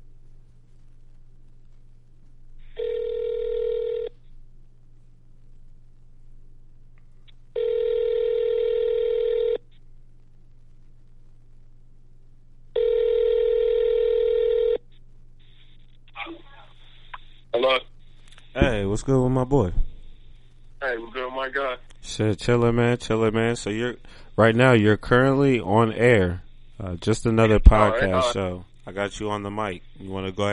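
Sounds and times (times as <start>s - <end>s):
low steady hum: 0.0s - 30.5s
brief voice answering an outgoing phone call: 2.8s - 4.1s, 7.6s - 9.6s, 12.8s - 14.8s, 27.4s - 28.4s
ringback tone of an outgoing phone call: 2.8s - 4.1s, 7.6s - 9.6s, 12.8s - 14.8s
speech: 19.0s - 19.9s, 21.5s - 30.5s.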